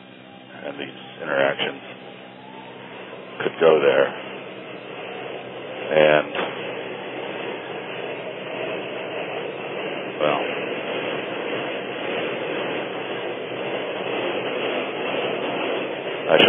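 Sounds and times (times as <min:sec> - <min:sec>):
subway train passing overhead: 0:00.0 - 0:16.4
speech: 0:00.6 - 0:02.1, 0:03.4 - 0:04.3, 0:05.9 - 0:06.4.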